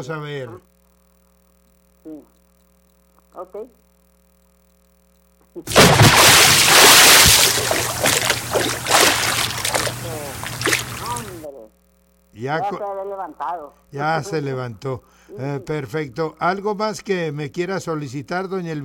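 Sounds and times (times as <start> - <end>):
speech: 0.0 - 0.7, 2.0 - 2.4, 3.4 - 3.8, 5.6 - 9.4, 10.0 - 11.8, 12.4 - 18.8
bucket of water being thrown and splashing: 5.7 - 11.4
excited voices and commotion: 9.6 - 11.5.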